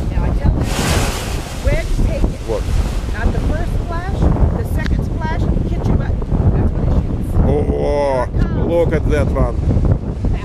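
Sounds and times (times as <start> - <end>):
ocean surf crashing against rock: 0.0 - 7.5
several people talking excitedly: 0.0 - 9.5
steady wind noise: 0.0 - 10.4.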